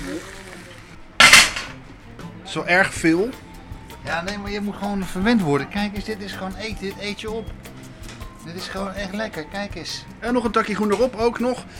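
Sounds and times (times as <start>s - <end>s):
metallic clatter as bacon is lifted out of a frying pan: 1.2s - 1.8s
speech: 2.5s - 3.4s, 4.0s - 7.6s, 8.4s - 11.7s.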